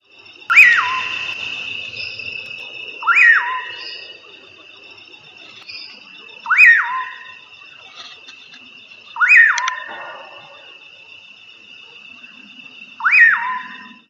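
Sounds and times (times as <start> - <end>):
Nyctidromus albicollis calling: 0.5 - 1.4, 3.0 - 4.1, 6.4 - 7.4, 9.2 - 10.7.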